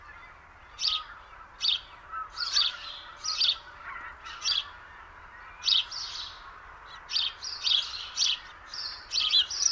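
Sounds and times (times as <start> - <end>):
house sparrow Passer domesticus chirping: 0.7 - 4.8, 5.6 - 9.7.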